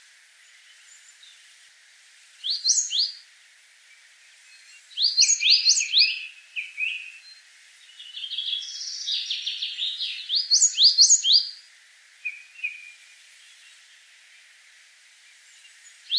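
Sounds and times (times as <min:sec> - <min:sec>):
coal tit calls and upward-sweeping whistles: 0:02.4 - 0:03.2, 0:04.6 - 0:07.4, 0:08.1 - 0:11.6, 0:15.9 - 0:16.1.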